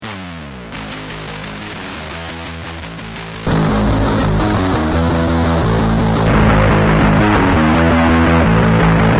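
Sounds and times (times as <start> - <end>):
bass guitar through a fuzz pedal: 0.0 - 9.1.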